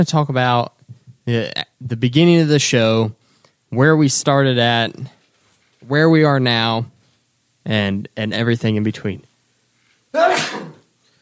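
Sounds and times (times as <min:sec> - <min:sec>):
speech: 0:00.0 - 0:05.2, 0:05.8 - 0:06.9, 0:07.6 - 0:09.3
person sneezing: 0:10.1 - 0:10.9.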